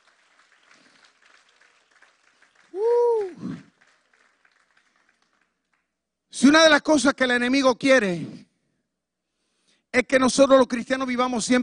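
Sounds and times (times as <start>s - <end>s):
church audience applauding: 0.0s - 6.0s
speech: 6.5s - 8.4s, 10.0s - 11.6s.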